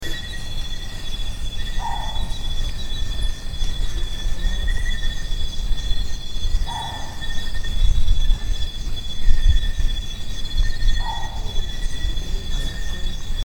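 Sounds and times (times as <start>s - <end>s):
owl on Kitanglad: 0.0s - 13.4s.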